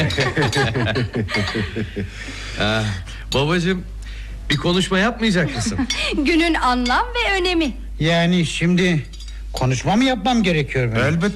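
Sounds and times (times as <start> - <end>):
drinking glasses clinking in a toast: 0.0 - 1.7, 8.9 - 9.4
rhythmic chuckling laughter: 0.0 - 2.4, 5.5 - 6.2
speech: 0.2 - 11.3.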